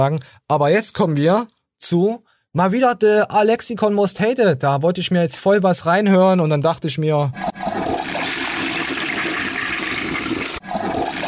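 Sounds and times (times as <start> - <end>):
speech: 0.0 - 7.7
toilet flushing: 7.4 - 11.2.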